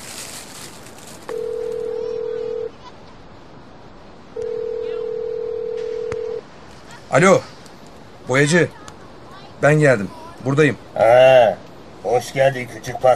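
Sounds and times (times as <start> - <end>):
faint hiss: 0.0 - 13.1
long steady electronic telephone line tones during dialing: 1.3 - 2.7, 4.4 - 6.4
speech: 7.1 - 7.5, 8.3 - 8.8, 9.6 - 13.1.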